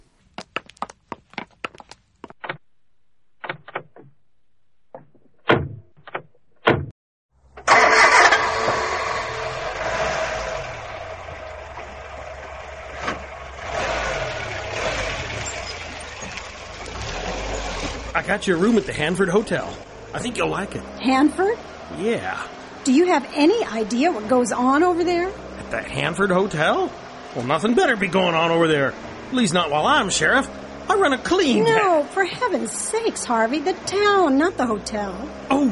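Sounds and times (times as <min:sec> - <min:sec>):
black and white car engine starting and idling: 0:07.4 - 0:35.6
speech: 0:18.3 - 0:35.6.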